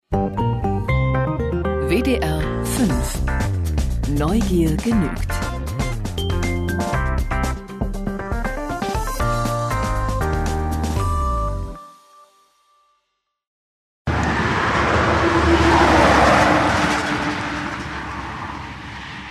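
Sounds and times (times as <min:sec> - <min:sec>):
music: 0:00.0 - 0:13.4
speech: 0:01.9 - 0:03.3, 0:04.1 - 0:05.5
sparse car traffic on an old tree-lined avenue in Poland: 0:14.1 - 0:19.2.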